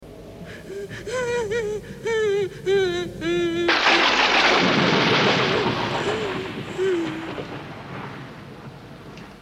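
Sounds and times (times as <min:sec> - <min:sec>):
horror sounds: 0:00.1 - 0:08.8
person crying: 0:00.5 - 0:04.8, 0:05.8 - 0:07.6.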